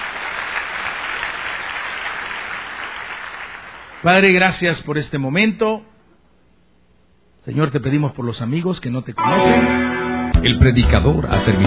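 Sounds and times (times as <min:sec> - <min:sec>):
audience applauding: 0:00.0 - 0:04.2
speech: 0:04.0 - 0:05.9, 0:07.4 - 0:11.6.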